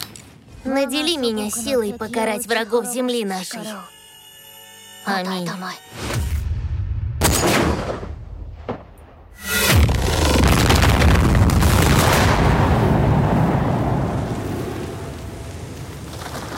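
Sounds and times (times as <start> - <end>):
speech: 0.6 - 4.0, 5.0 - 6.1
booming explosion spell blasts: 6.4 - 16.1
massive explosion rolling into a roaring rumble: 7.8 - 15.8.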